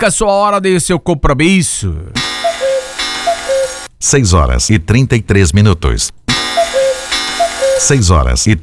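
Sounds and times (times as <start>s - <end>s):
speech: 0.0s - 2.6s, 4.0s - 6.8s, 7.8s - 8.6s
hissy background: 2.0s - 8.6s
clock ticking in a two-tone tick-tock: 2.2s - 3.9s, 6.3s - 8.6s.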